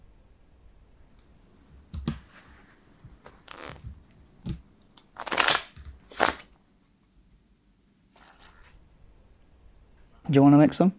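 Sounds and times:
deck of cards riffling and snapping: 2.0s - 4.0s, 5.1s - 6.5s
speech: 10.3s - 10.9s.

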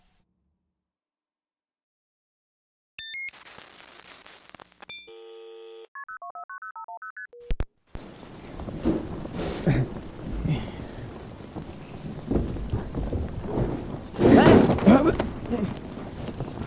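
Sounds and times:
low rumbles of thunder: 8.0s - 16.6s
steady rain hissing: 8.0s - 16.6s.

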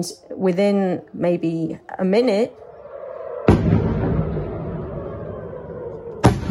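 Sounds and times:
speech: 0.0s - 2.6s
rocket explosions over Jerusalem: 2.8s - 6.4s.

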